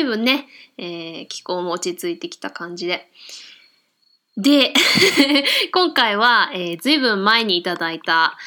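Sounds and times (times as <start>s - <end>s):
speech: 0.0s - 3.6s, 4.4s - 8.4s
bell cricket chirping: 3.5s - 4.5s
laughter: 4.8s - 5.6s.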